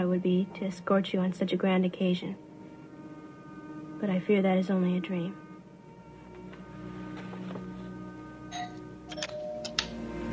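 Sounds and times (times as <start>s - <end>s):
speech: 0.0s - 2.5s, 4.0s - 5.4s
low hum: 0.0s - 10.3s
doorbell chiming: 8.5s - 10.0s.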